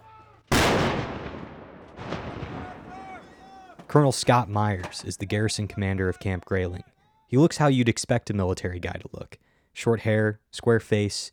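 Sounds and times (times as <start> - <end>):
heavy artillery fired by soldiers in a field near Grayling during training: 0.5 - 4.0
speech: 3.9 - 11.3.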